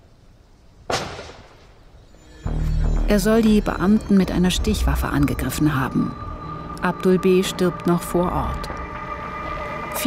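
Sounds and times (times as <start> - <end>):
gunshots fired by police officers: 0.9 - 1.8
speech: 3.1 - 6.2, 6.8 - 8.8.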